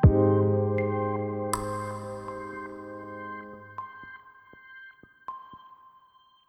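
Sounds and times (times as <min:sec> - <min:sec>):
ambient textures: 0:00.0 - 0:03.8
piano: 0:00.0 - 0:04.2.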